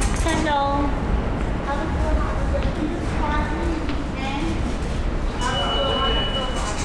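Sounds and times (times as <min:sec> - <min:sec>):
loud rumble in a busy underground station: 0:00.0 - 0:05.4
high metallic squeal from a subway train: 0:05.4 - 0:06.8.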